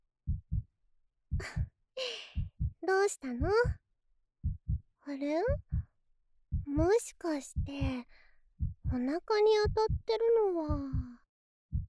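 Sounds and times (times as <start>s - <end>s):
heartbeat thumping: 0.3s - 0.6s, 1.3s - 1.7s, 2.4s - 2.8s, 3.4s - 3.8s, 4.4s - 4.8s, 5.5s - 5.9s, 6.5s - 7.0s, 7.6s - 8.0s, 8.6s - 10.1s, 10.7s - 11.8s
speech: 1.4s - 2.2s, 2.9s - 3.8s, 5.1s - 5.7s, 6.7s - 8.2s, 8.9s - 11.1s.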